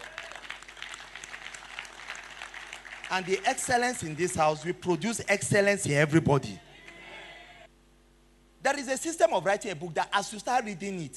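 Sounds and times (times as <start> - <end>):
audience applauding: 0.0 - 4.3
speech: 3.1 - 6.7, 8.8 - 11.1.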